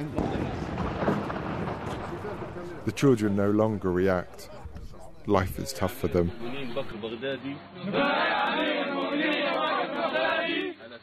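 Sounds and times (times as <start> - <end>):
distant gunfire heard from inside a school classroom: 0.0 - 2.9
murmuring voices in a school classroom: 0.0 - 11.0
speech: 2.9 - 4.6, 5.2 - 9.4.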